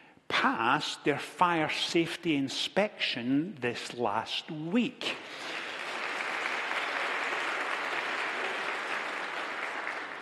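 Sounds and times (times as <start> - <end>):
speech: 0.4 - 5.5
audience clapping: 5.1 - 10.2.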